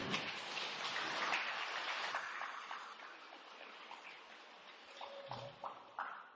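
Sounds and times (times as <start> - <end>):
steady rain falling: 0.0 - 5.0
nearer drips and splashes: 0.0 - 6.3.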